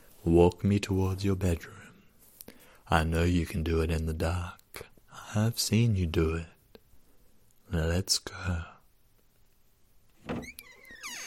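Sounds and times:
speech: 0:00.2 - 0:01.9, 0:02.9 - 0:06.5, 0:07.7 - 0:08.7
door being pulled shut: 0:10.2 - 0:11.2.

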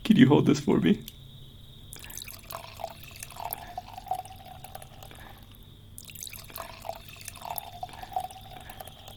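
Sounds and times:
speech: 0:00.2 - 0:01.2
red wine glugging and splashing into a glass: 0:01.9 - 0:09.1.

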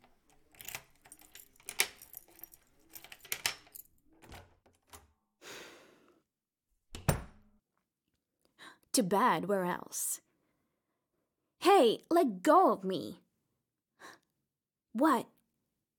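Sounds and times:
keys jangling: 0:00.0 - 0:05.0
speech: 0:09.0 - 0:10.2, 0:11.7 - 0:13.2, 0:15.0 - 0:15.3.

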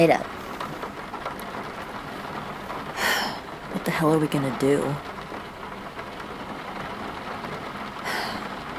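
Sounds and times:
speech: 0:00.0 - 0:00.4, 0:03.8 - 0:05.1
steady rain falling: 0:00.0 - 0:08.7.

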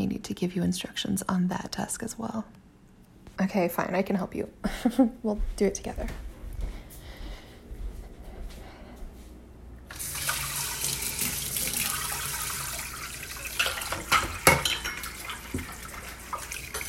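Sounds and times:
speech: 0:00.2 - 0:02.6, 0:03.4 - 0:06.3
faucet water running into a sink while washing dishes: 0:09.9 - 0:16.8
clinks and knocks of dishes being handled: 0:13.4 - 0:16.8.

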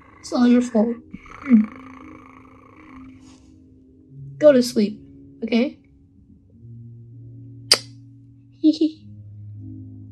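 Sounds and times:
voice imitating a cat purring: 0:00.0 - 0:03.3
speech: 0:00.2 - 0:01.8, 0:04.4 - 0:05.8, 0:08.7 - 0:09.0.

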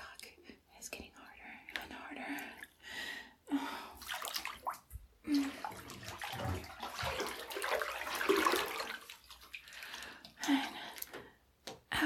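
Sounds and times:
water dripping and splashing into a filled bathtub: 0:01.7 - 0:02.8, 0:04.0 - 0:11.9
soft sloshing of bathwater: 0:04.0 - 0:11.2.

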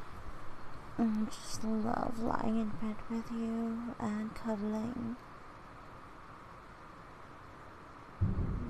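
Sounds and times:
soft hiss: 0:00.0 - 0:08.6
speech: 0:01.0 - 0:05.3
thunder rumbling: 0:08.2 - 0:08.6.

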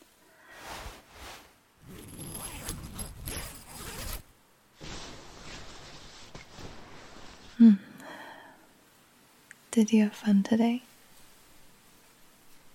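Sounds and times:
soft rustle of sleeping bag fabric: 0:00.5 - 0:07.6
sleeping bag being zipped up: 0:00.8 - 0:06.0
speech: 0:07.6 - 0:07.8, 0:09.8 - 0:10.9.

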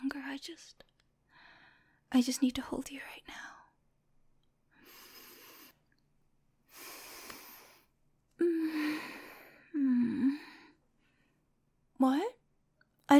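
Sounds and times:
speech: 0:00.4 - 0:00.9, 0:02.1 - 0:03.6, 0:12.0 - 0:12.4
person breathing heavily: 0:04.8 - 0:05.8, 0:06.7 - 0:11.4.

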